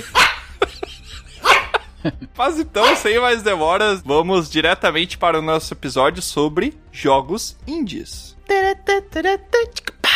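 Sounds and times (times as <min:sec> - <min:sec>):
laughter: 0:00.0 - 0:02.4
small female dog yipping and barking: 0:00.1 - 0:00.5, 0:01.4 - 0:01.8, 0:02.8 - 0:03.1
speech: 0:02.0 - 0:09.9.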